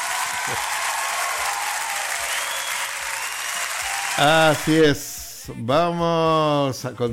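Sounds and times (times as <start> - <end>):
crowd applauding: 0.0 - 4.8
speech: 0.5 - 0.8, 4.2 - 7.1.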